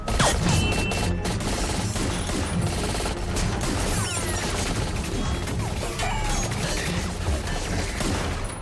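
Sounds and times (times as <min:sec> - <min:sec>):
rapid gunfire: 0:00.1 - 0:08.6.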